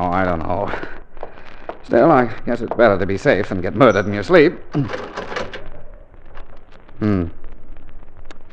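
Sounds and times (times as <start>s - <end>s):
steady hiss: 0.0s - 8.5s
speech: 1.9s - 5.2s, 7.0s - 7.4s
short creaking groan: 3.4s - 8.5s
house door lock rattled and tested: 4.7s - 6.6s.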